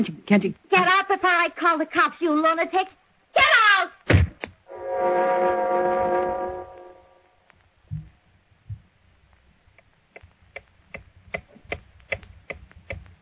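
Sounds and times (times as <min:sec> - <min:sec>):
speech: 0:00.0 - 0:03.9
loud sustained horn-like tone: 0:04.7 - 0:07.5.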